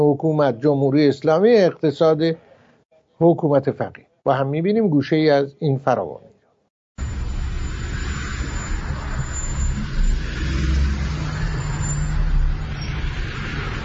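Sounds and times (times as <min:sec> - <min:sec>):
speech: 0:00.0 - 0:02.5, 0:03.2 - 0:06.3
heavy road traffic roar on a boulevard: 0:07.0 - 0:13.8.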